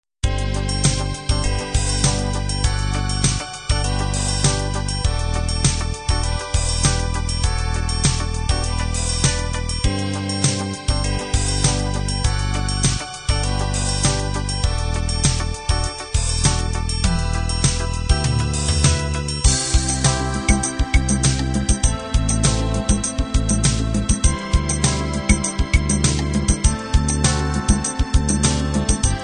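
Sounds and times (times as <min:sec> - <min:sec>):
windy beat: 0:00.9 - 0:29.2.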